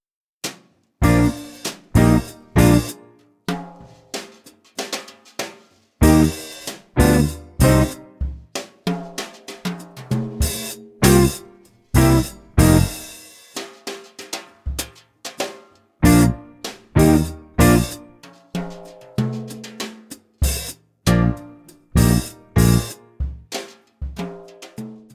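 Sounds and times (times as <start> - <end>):
guitar play-along for tempo and rhythm exercise: 1.1 - 3.1, 6.0 - 8.4, 11.0 - 13.1, 16.1 - 18.2, 21.1 - 23.3.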